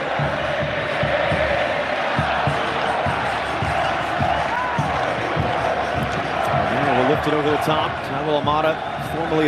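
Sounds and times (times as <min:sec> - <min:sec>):
huge stadium crowd roaring and cheering: 0:00.0 - 0:09.4
speech: 0:07.3 - 0:09.4.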